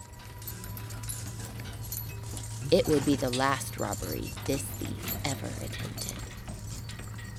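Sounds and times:
faint jingling: 0.0s - 7.3s
team of horses pulling a stagecoach galloping: 0.0s - 7.3s
speech: 2.7s - 6.2s.

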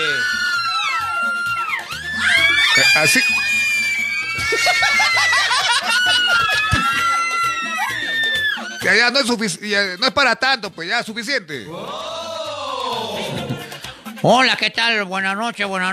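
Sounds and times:
crowd shouting and screaming: 0.0s - 9.4s, 11.7s - 13.6s
speech: 3.0s - 3.6s, 4.5s - 7.2s, 8.8s - 12.2s, 14.2s - 15.9s
scattered laughter: 4.5s - 7.8s.

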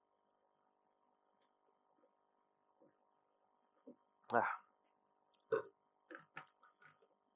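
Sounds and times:
speech: 3.9s - 4.6s
loud short burp after drinking: 5.5s - 5.8s
softer throaty gulps or small burps: 5.5s - 6.3s.

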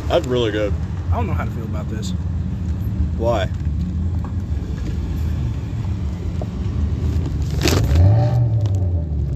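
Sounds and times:
speech: 0.1s - 2.3s, 3.2s - 3.6s
car engine idling and revving: 2.9s - 9.3s.

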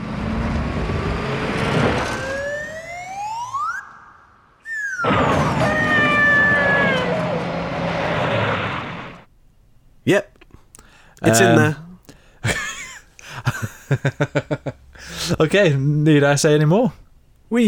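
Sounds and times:
engine roaring during car stunt: 0.0s - 3.3s, 5.0s - 9.3s
comedic slide whistle during car stunt: 2.6s - 7.2s
speech: 10.1s - 10.3s, 11.2s - 11.8s, 13.9s - 17.6s
laughter: 12.4s - 15.4s.

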